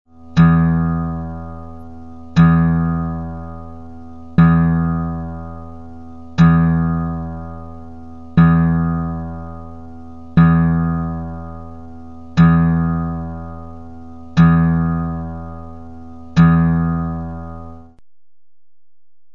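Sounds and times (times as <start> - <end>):
low E steel string being tuned: 0.1 - 18.0.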